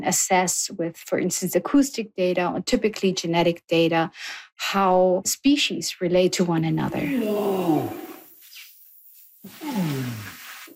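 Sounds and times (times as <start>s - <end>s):
speech: 0.0s - 8.0s
male orangutan long call: 7.1s - 8.2s.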